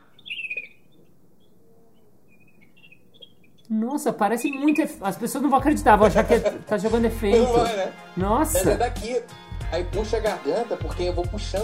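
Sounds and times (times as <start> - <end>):
person imitating a bird chirping with their mouth: 0.0 - 5.0
speech: 3.7 - 11.6
laughter: 5.8 - 6.7.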